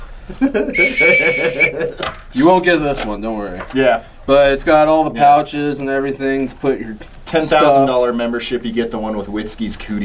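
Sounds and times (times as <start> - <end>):
speech: 0.3 - 10.0
shrill blast from a small whistle on a paracord survival bracelet: 0.8 - 1.8.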